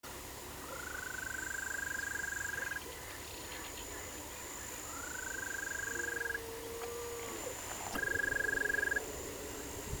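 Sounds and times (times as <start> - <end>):
green toad Bufotes pseudoraddei calling: 0.6 - 4.1, 4.8 - 9.2.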